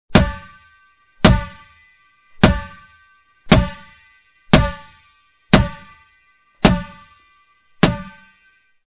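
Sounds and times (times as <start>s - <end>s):
rubber ball bouncing: 0.1s - 0.6s, 1.2s - 1.7s, 2.4s - 2.9s, 3.5s - 6.0s, 6.6s - 7.1s, 7.8s - 8.3s.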